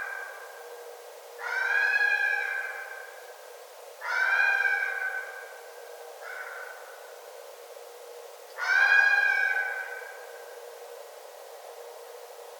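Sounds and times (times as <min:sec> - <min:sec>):
red fox loud harmonic wailing cry: 0:01.4 - 0:02.9, 0:04.0 - 0:05.4, 0:08.6 - 0:10.0.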